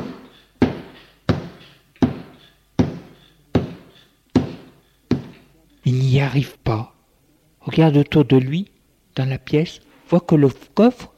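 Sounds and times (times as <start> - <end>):
banging on boarded-up window planks: 0.0 - 5.4
speech: 5.9 - 6.9, 7.7 - 11.1.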